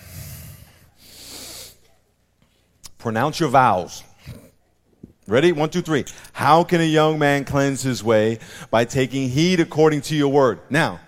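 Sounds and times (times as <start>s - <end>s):
church congregation inhaling together during a service: 0.0s - 1.9s
speech: 3.0s - 4.4s, 5.3s - 11.0s.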